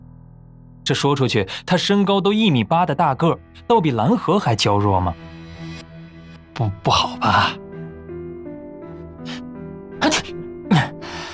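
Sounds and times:
speech: 0.8s - 5.3s, 6.6s - 7.6s
man sneezing: 10.0s - 11.0s.

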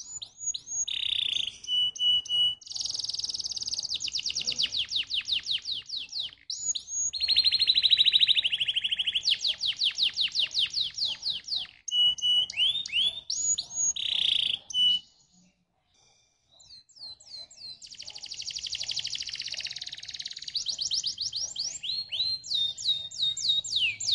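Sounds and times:
Atlantic canary song with buzzy trills: 0.0s - 24.1s.

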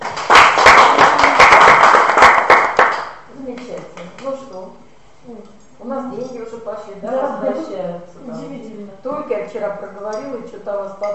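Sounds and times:
applause from many hands clapping: 0.0s - 3.7s
speech: 5.2s - 11.1s.

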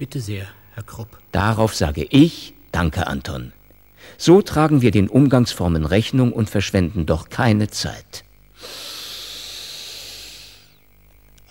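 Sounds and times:
speech: 0.0s - 8.9s
deep breaths drawn in a radio drama scene: 3.9s - 4.2s, 8.5s - 10.9s.

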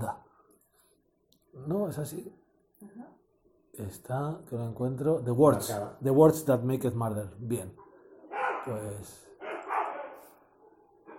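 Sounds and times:
speech: 1.7s - 3.2s, 3.8s - 7.8s, 8.6s - 9.2s
dog barking: 7.8s - 8.8s, 9.4s - 11.1s.

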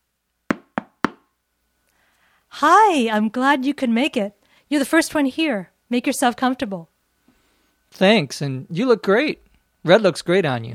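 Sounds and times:
knocking on a door: 0.5s - 1.3s
speech: 2.5s - 6.9s, 7.9s - 10.7s.

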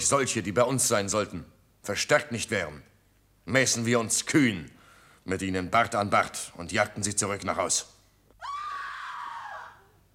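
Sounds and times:
speech: 0.0s - 8.5s
women screaming in a dramatized scene: 8.4s - 10.0s.

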